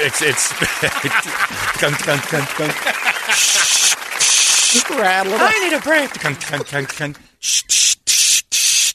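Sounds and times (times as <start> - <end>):
laughter: 0.0 - 7.2
speech: 0.0 - 8.6
person imitating a Krylon spray paint can hissing with their mouth: 3.4 - 4.9, 7.4 - 8.9.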